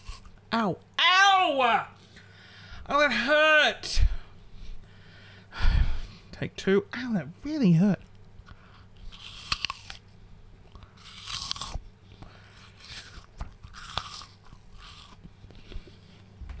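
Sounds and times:
speech: 0.5s - 2.0s, 2.9s - 4.0s, 6.4s - 8.1s
crunchy chewing of food while someone eats: 8.8s - 16.4s.

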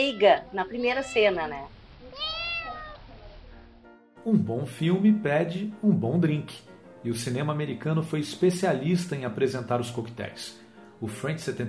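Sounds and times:
speech: 0.0s - 2.3s, 4.2s - 11.6s
cat meowing: 0.0s - 3.5s
hiss: 0.0s - 11.6s.

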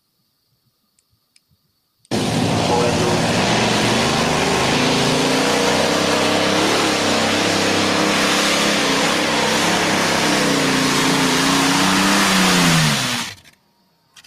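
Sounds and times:
supercharged car engine with prototype supercharger on front motor revving: 2.1s - 13.4s.

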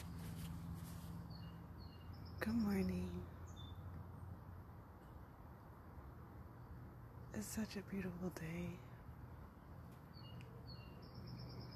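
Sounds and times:
birds singing outdoors: 0.0s - 4.0s, 10.0s - 11.7s
soft steady hum: 0.0s - 11.7s
speech: 2.4s - 3.4s, 7.4s - 8.9s.

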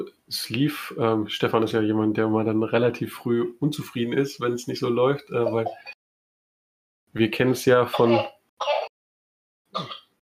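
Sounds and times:
speech: 0.0s - 6.0s, 7.1s - 8.8s
small child coughing: 8.1s - 8.9s, 9.8s - 10.1s.

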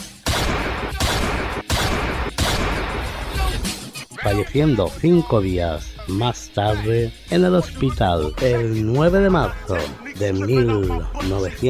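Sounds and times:
loud gunshots: 0.0s - 3.7s
speech: 4.2s - 11.6s.

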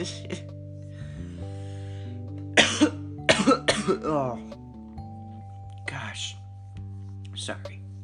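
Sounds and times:
speech: 0.0s - 0.5s, 2.8s - 4.6s, 6.1s - 6.4s, 7.4s - 7.8s
coughing: 2.6s - 4.4s.

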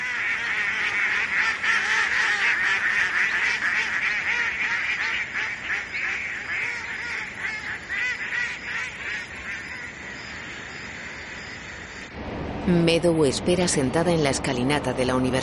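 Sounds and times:
flock of ducks quacking and honking overhead: 0.0s - 12.1s
speech: 12.7s - 15.4s.

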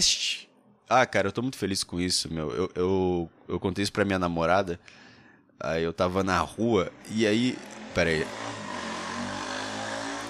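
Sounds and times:
speech: 0.0s - 0.3s, 0.9s - 5.0s, 5.6s - 8.5s
motorcycle engine roaring past on the street: 6.9s - 10.2s.

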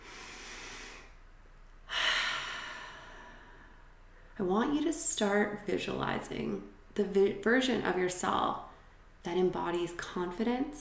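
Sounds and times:
slow deep breath during a guided visualization: 0.0s - 1.2s, 1.9s - 4.3s
speech: 4.4s - 10.7s.

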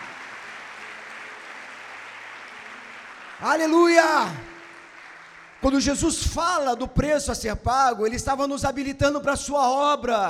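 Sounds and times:
church audience applauding during a sermon: 0.0s - 6.7s
speech: 3.4s - 4.5s, 5.6s - 10.2s.

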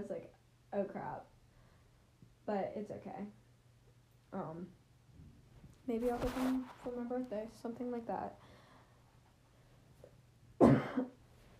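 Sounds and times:
speech: 0.0s - 1.3s, 2.5s - 3.4s, 4.3s - 4.8s, 5.9s - 8.5s, 10.6s - 11.2s
short harsh cough: 10.6s - 11.2s.

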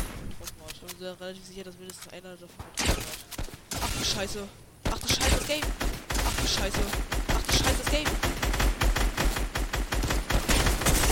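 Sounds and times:
speech: 1.0s - 3.2s, 4.0s - 8.4s
rapid video game gunfire shooting through a shield: 2.8s - 11.1s.

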